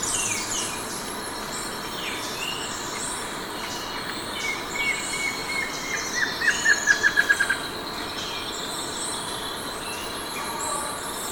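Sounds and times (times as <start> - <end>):
high insect buzzing in Ecuador: 0.0 - 11.3
plain antvireo singing in Ecuador: 0.0 - 11.3.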